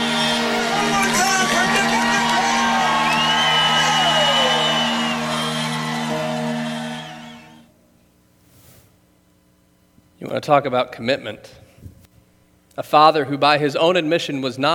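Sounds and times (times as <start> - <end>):
large crowd cheering and whooping at a race finish: 0.0 - 7.7
speech: 10.4 - 11.6, 12.8 - 14.7.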